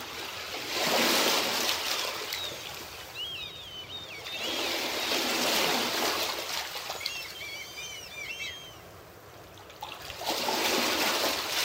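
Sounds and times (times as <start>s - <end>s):
small waves breaking on the shore: 0.0s - 11.6s
seagulls calling overhead over the sea: 1.8s - 5.9s, 6.8s - 8.9s.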